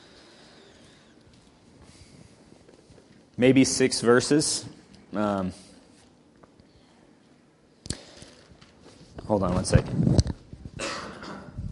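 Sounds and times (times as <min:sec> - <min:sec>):
speech: 0:03.4 - 0:05.6, 0:09.3 - 0:10.3
single harsh breathy cough: 0:10.8 - 0:11.6
short throat sounds: 0:10.8 - 0:11.7.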